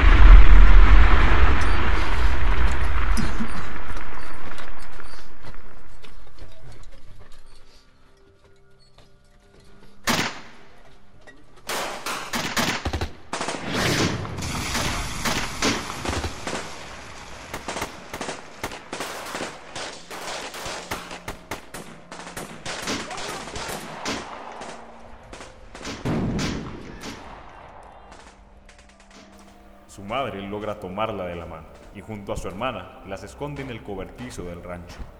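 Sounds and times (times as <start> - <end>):
explosion of a guerrilla attack on a rural town: 0.0 - 6.6, 11.7 - 28.4
sustained machine gun and rifle fire: 11.7 - 29.2
speech: 30.5 - 35.1.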